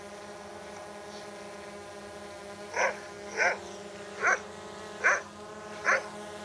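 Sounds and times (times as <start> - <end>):
search-and-rescue drone hovering with insect-like buzz: 0.0 - 6.4
recorded dog barks from drone loudspeaker: 2.8 - 3.6, 4.2 - 4.4, 5.0 - 6.1.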